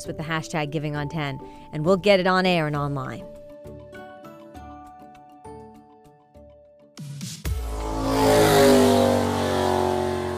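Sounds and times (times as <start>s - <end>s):
speech: 0.0s - 3.4s
small go-kart engines revving at a go-kart racing track: 7.6s - 10.3s.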